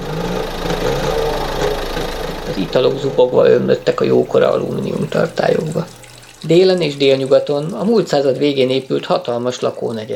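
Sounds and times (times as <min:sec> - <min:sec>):
heavy transport truck engines revving in a courtyard: 0:00.0 - 0:09.7
speech: 0:02.6 - 0:10.1.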